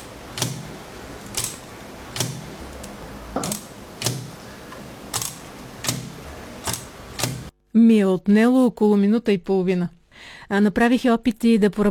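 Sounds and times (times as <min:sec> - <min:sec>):
braille writer keys being pressed: 0:00.0 - 0:07.5
speech: 0:07.8 - 0:11.8.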